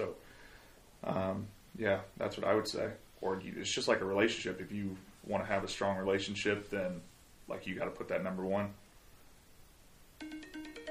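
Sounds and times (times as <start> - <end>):
speech: 1.0 - 8.8
phone timer alarm with electronic chime tones: 10.2 - 10.8.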